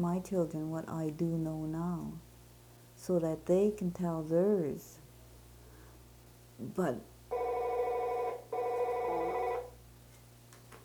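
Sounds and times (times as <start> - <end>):
speech: 0.0 - 2.3, 3.0 - 5.0, 6.6 - 7.1
telephone ringing with bright electronic ringing: 7.3 - 9.8.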